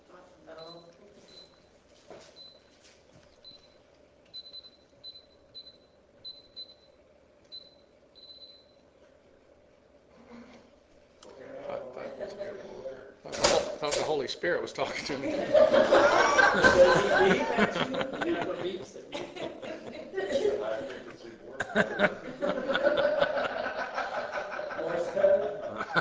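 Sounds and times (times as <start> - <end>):
electronic alarm beeping: 0.6 - 1.7, 2.4 - 2.7, 3.4 - 8.8
speech: 14.0 - 19.2
laughter: 14.8 - 25.9.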